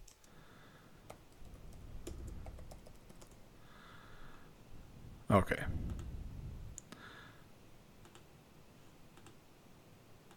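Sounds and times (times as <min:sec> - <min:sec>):
soft low hum: 0:00.0 - 0:10.3
typing on the keyboard of a new laptop: 0:01.0 - 0:03.4, 0:08.0 - 0:08.3, 0:09.2 - 0:09.4
speech: 0:05.3 - 0:05.9.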